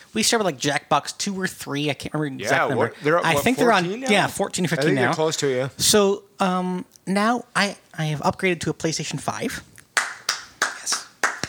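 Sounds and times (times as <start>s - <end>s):
speech: 0.1s - 9.7s
sharp hand claps: 9.8s - 11.4s.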